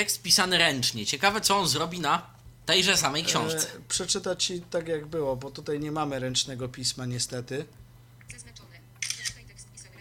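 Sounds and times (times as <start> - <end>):
speech: 0.0 - 8.4
low steady hum: 0.0 - 9.9
phone camera app shutter photographing a book page: 9.0 - 9.4.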